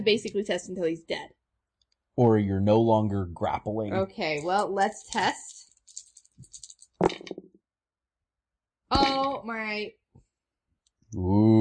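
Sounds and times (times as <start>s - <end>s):
speech: 0.0s - 1.4s, 2.2s - 5.6s, 8.9s - 10.0s, 11.1s - 11.5s
people exclaiming and talking: 2.2s - 5.4s
dice tumbling across a surface: 4.3s - 7.4s.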